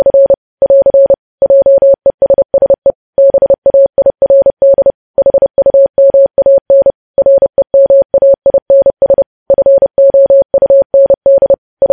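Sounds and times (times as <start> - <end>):
Morse code mid-pitched beep keyed in dots and dashes: 0.0 - 11.9.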